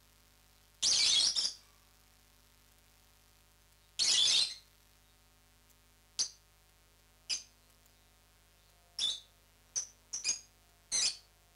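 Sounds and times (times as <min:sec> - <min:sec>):
lovebird chirps, parrots Agapornis: 0:00.8 - 0:01.6, 0:03.9 - 0:04.7, 0:07.3 - 0:11.5.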